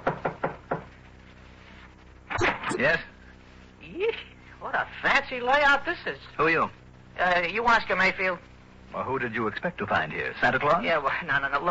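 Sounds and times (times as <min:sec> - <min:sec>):
firm knocking on a door: 0:00.0 - 0:00.9
speech: 0:02.8 - 0:03.1, 0:03.9 - 0:11.6.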